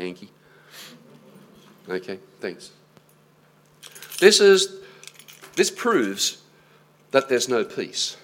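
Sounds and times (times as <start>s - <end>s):
speech: 0.0s - 1.0s, 1.9s - 2.8s, 4.2s - 4.8s, 5.6s - 6.4s, 7.1s - 8.2s
metal keys jangling as they are handled: 3.1s - 6.3s.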